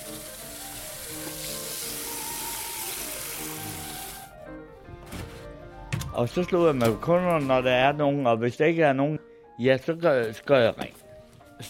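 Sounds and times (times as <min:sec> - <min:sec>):
water running from a tap for hot water: 0:00.0 - 0:04.3
speech: 0:06.2 - 0:11.0.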